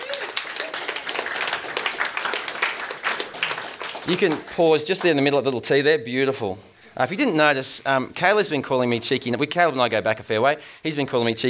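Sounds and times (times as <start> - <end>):
small group clapping: 0.0 - 5.3
speech: 4.1 - 11.4.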